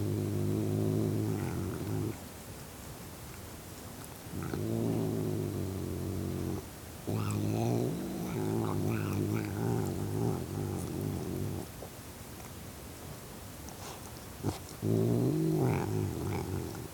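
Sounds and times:
cat growling in low rumbling bouts: 0:00.0 - 0:02.2, 0:04.3 - 0:11.7, 0:14.4 - 0:16.9.

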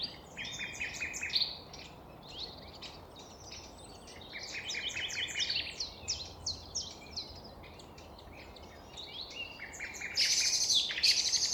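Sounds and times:
common nightingale song in a city park: 0:00.0 - 0:11.5.

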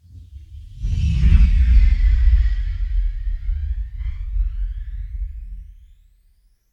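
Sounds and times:
flanging rumble flyby: 0:00.0 - 0:06.5.

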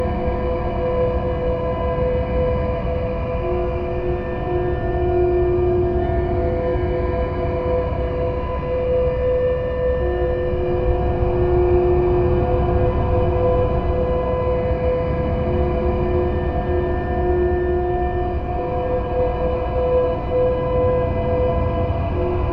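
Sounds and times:
horror soundscape: 0:00.0 - 0:22.5.

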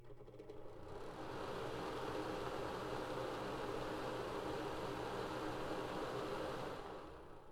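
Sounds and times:
fan running: 0:00.1 - 0:07.5.

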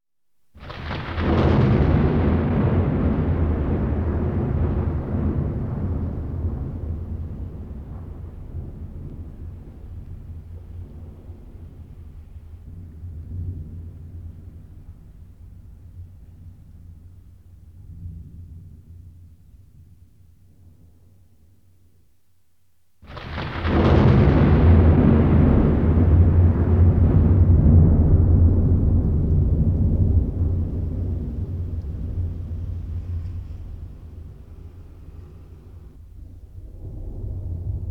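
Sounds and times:
lightning strikes: 0:00.6 - 0:14.9, 0:23.0 - 0:37.8
thunder rumbling: 0:00.6 - 0:21.5, 0:23.0 - 0:37.8.

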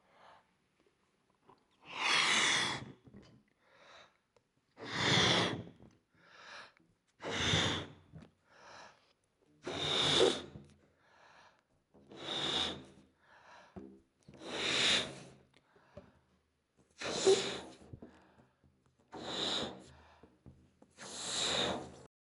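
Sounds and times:
person blowing up a balloon: 0:04.8 - 0:05.8, 0:07.2 - 0:08.1, 0:09.6 - 0:10.7, 0:12.1 - 0:13.0, 0:14.4 - 0:15.4, 0:17.0 - 0:17.8, 0:19.1 - 0:19.9, 0:21.0 - 0:22.1.

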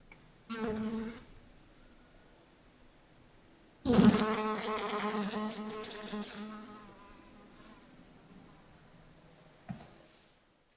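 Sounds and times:
house fly buzzing: 0:00.5 - 0:01.2, 0:03.9 - 0:07.6.

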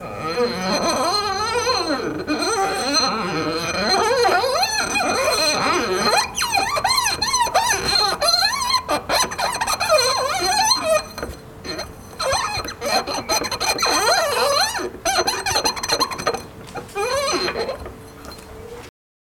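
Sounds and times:
glass squeaking: 0:00.0 - 0:18.9.

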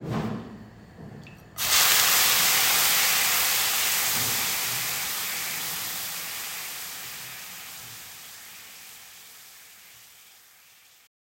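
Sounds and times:
food sizzling: 0:01.6 - 0:11.1.

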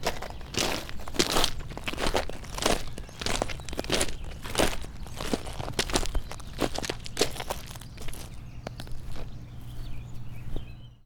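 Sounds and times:
footsteps on big gravel: 0:00.0 - 0:10.8.

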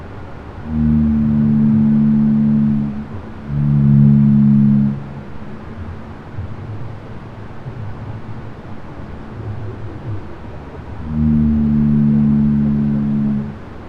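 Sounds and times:
constant rumbling background hiss: 0:00.0 - 0:13.8
blue whale B call, low steady tonal moan: 0:00.6 - 0:05.2, 0:10.9 - 0:13.8.

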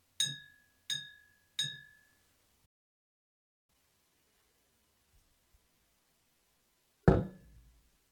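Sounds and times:
glass bottle: 0:00.2 - 0:02.1, 0:07.1 - 0:07.5.

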